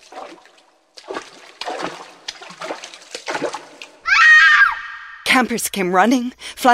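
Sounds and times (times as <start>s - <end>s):
water sloshing and splashing in a pit: 0.0s - 4.1s
loud piercing scream: 4.0s - 5.3s
speech: 5.4s - 6.7s.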